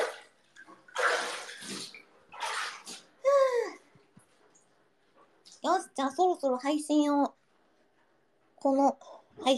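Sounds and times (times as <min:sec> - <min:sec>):
bath water splashing in a bathtub: 0:00.0 - 0:03.3
speech: 0:06.0 - 0:07.3, 0:08.6 - 0:09.5.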